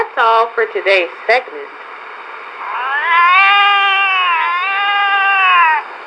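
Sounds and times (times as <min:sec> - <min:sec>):
speech: 0:00.2 - 0:01.8
cat yowling meow: 0:02.6 - 0:05.9.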